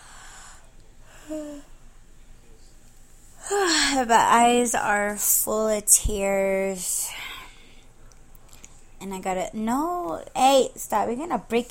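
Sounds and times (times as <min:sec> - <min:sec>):
soft breathing: 0:00.0 - 0:01.8, 0:07.0 - 0:09.0
tired sleepy person yawning: 0:01.2 - 0:01.7
speech: 0:01.3 - 0:01.7, 0:03.9 - 0:07.2, 0:09.0 - 0:11.6.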